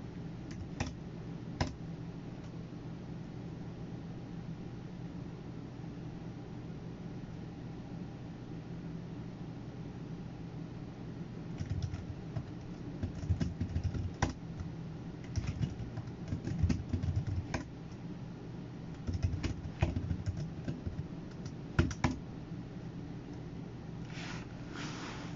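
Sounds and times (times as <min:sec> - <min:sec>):
low steady computer hum: 0:00.0 - 0:25.3
computer keyboard typing and tapping: 0:00.5 - 0:01.0, 0:11.6 - 0:18.0, 0:19.0 - 0:22.2.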